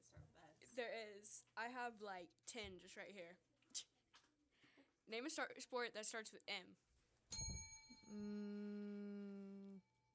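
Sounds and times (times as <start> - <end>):
speech: 0.0 - 3.9, 5.1 - 6.8, 8.1 - 8.9
bright bell rung by a game player: 7.3 - 8.4.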